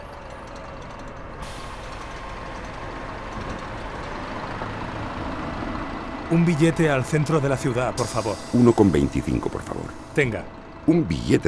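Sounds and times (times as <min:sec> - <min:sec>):
large bus engine idling at a stop: 0:00.0 - 0:11.4
bus air-brake hiss: 0:01.4 - 0:02.6, 0:08.0 - 0:10.4
speech: 0:06.3 - 0:11.4.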